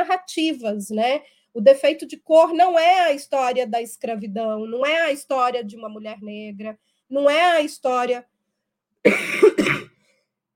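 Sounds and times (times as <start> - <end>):
speech: 0.1 - 8.3, 9.0 - 9.8
hoarse coughing from a person with the flu: 9.1 - 10.1.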